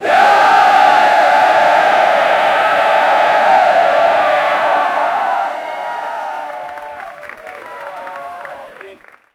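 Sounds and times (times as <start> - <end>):
crowd of 10000 people chanting: 0.0 - 7.2.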